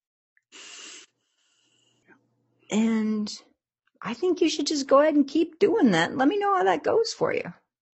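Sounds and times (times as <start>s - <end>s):
deep breathing: 0.5s - 2.3s
speech: 2.7s - 7.6s.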